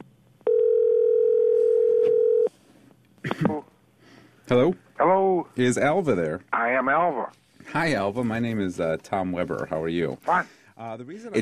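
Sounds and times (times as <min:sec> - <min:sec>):
telephone ring tone heard through a handset: 0:00.4 - 0:02.5
speech: 0:04.5 - 0:11.4.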